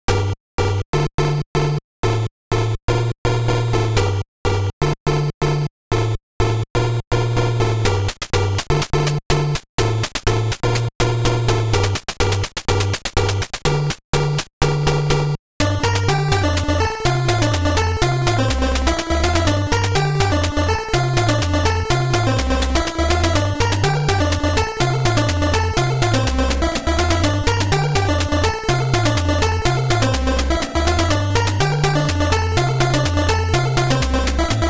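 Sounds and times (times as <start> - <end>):
8-bit rave music: 0.1 - 34.6.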